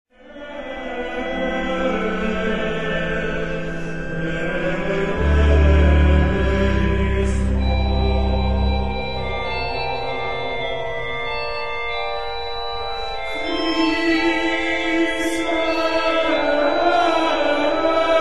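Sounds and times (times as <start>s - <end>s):
baritone singing: 0.2s - 11.0s, 13.2s - 18.2s
organ playing: 0.3s - 18.2s
orchestra playing: 4.2s - 11.6s.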